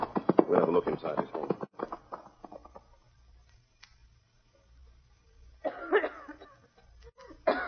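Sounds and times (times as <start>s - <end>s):
faint low noise: 0.0s - 7.6s
speech: 0.5s - 1.4s
woman coughing: 5.6s - 7.6s.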